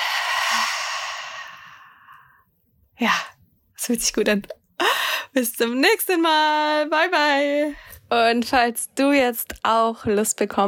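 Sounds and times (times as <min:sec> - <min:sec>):
deep exhale during a guided belly-breathing meditation exercise: 0:00.0 - 0:02.4
speech: 0:03.0 - 0:03.3, 0:03.9 - 0:04.6, 0:05.3 - 0:10.6.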